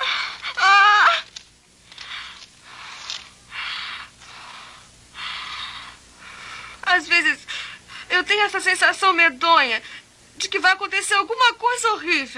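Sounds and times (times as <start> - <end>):
heavy ragged breathing from a person in a dubbed film scene: 2.0 - 6.8
speech: 7.0 - 7.4, 8.2 - 12.3.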